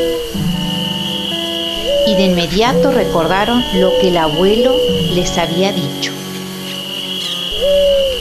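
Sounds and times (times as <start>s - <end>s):
dove cooing: 0.0s - 8.2s
faint steady hum: 0.0s - 8.2s
speech: 2.1s - 6.2s.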